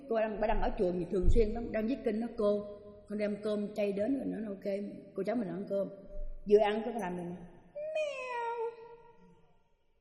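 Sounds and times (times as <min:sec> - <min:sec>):
speech: 0:00.1 - 0:07.5
human voice imitating a cat meow: 0:07.8 - 0:09.0.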